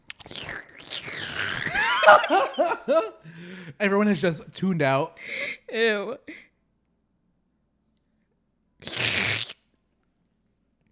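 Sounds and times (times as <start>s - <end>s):
loud wet hissy slurping noise marking an on-screen kiss: 0.0s - 1.9s, 8.8s - 9.7s
laughter: 1.8s - 3.2s
speech: 2.1s - 6.4s.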